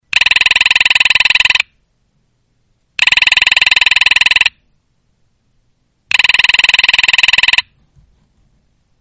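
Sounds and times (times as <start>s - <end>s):
military telephone: 0.1s - 1.7s, 3.0s - 4.6s, 6.1s - 7.8s.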